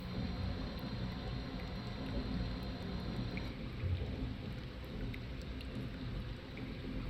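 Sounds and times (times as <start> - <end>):
wet cave ambience: 0.0 - 7.0.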